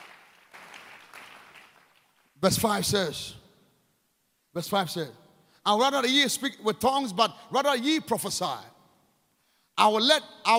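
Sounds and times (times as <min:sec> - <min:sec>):
congregation clapping: 0:00.0 - 0:02.5
person speaking loudly: 0:02.4 - 0:03.4, 0:04.6 - 0:08.7, 0:09.8 - 0:10.5
speech: 0:02.4 - 0:03.4, 0:04.5 - 0:08.7, 0:09.8 - 0:10.5.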